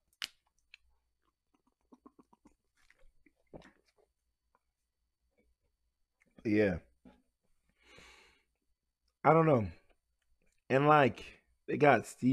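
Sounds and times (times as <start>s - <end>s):
person drinking water: 0.1s - 4.7s
speech: 6.5s - 6.8s, 9.2s - 9.8s, 10.7s - 12.3s.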